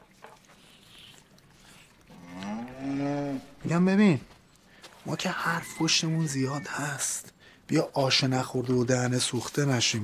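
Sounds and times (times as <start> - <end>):
cattle mooing in a stable: 2.1 - 3.6
speech: 3.7 - 4.3, 5.0 - 10.0.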